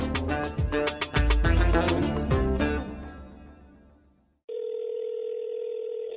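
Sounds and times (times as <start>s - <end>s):
music: 0.0s - 4.2s
telephone ringback tone before call is answered: 4.5s - 6.1s.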